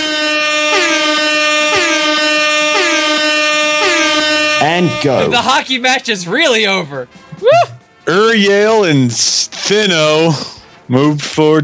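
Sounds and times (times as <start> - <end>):
loud sustained air horn blaring: 0.0 - 5.7
speech: 4.7 - 11.6.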